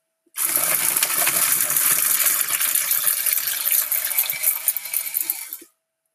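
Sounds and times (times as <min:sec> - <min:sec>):
metal herb grinder being twisted: 0:01.2 - 0:05.7.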